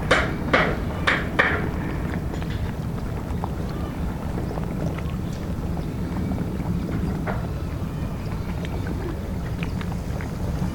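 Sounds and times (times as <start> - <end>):
sharp hammer blows: 0.0 - 2.7
canal water lapping: 0.0 - 10.7.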